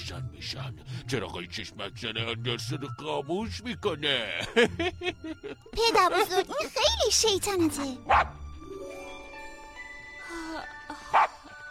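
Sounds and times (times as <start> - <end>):
speech: 0.1 - 9.0
laughter: 4.3 - 6.8
dog giving a short sharp bark: 8.1 - 8.4, 11.1 - 11.4.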